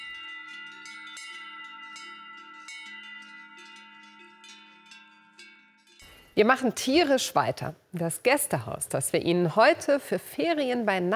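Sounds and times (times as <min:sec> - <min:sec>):
several cowbells clanging: 0:00.0 - 0:06.8
speech: 0:06.4 - 0:11.1.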